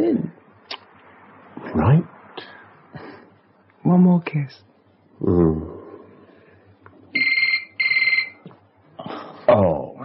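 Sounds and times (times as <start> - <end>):
speech: 1.8 - 2.5, 3.9 - 5.8
short murmured vocal sound: 5.2 - 6.5
telephone ringing with electronic trilling bursts: 7.2 - 8.4.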